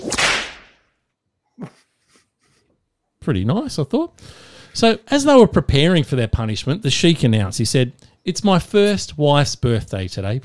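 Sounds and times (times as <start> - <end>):
sharp loud whip cracking: 0.0 - 0.9
speech: 3.2 - 10.4.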